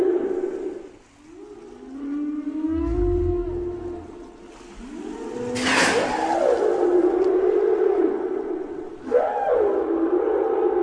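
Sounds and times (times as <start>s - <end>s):
whale song gliding tonal moan: 0.0s - 10.8s
low throbbing rumble: 2.7s - 5.2s.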